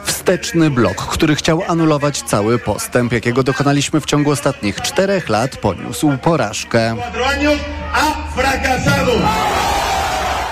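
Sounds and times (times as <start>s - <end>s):
speech: 0.3s - 9.8s
sustained roar of crowd cheering on election night: 8.6s - 10.5s
large crowd chanting an anti-fascist slogan outside Socialist party headquarters in Spain: 9.1s - 10.5s.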